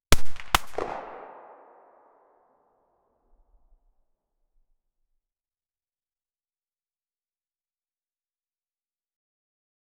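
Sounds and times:
single revolver gunshot: 0.1s - 2.3s.

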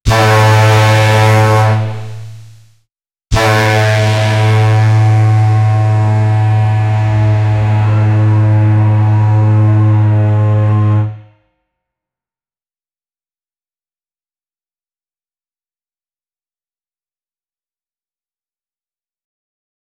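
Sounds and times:
goal horn: 0.1s - 2.4s, 3.3s - 11.5s.

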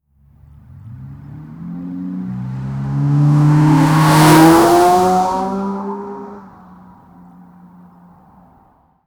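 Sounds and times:
powerful sports car launch: 0.4s - 7.2s.

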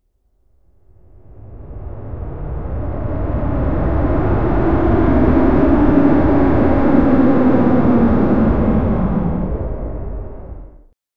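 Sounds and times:
Boeing 747 jet descending: 2.2s - 10.8s.

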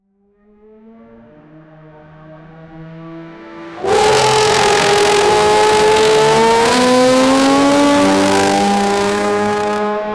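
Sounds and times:
50cc two-stroke motorcycle engine: 3.8s - 10.0s.

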